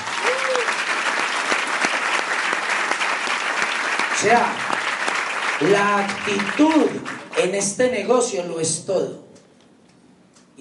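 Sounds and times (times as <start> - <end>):
large audience applauding: 0.0 - 7.5
person whistling or cheering: 0.2 - 0.7
speech: 4.2 - 4.7, 5.6 - 9.2.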